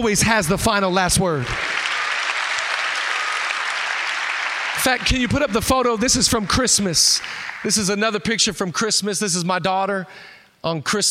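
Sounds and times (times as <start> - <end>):
speech: 0.0 - 1.8, 4.8 - 11.0
audience applause: 1.4 - 8.0.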